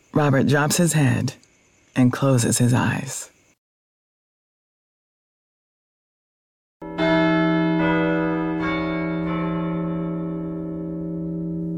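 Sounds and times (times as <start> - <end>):
speech: 0.1 - 1.4, 2.0 - 3.4
church bells ringing: 6.8 - 11.7.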